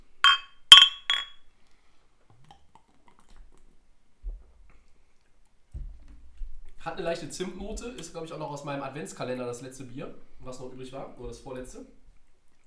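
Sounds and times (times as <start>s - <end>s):
glasses clinking in a toast: 0.2s - 1.3s
speech: 6.8s - 12.0s.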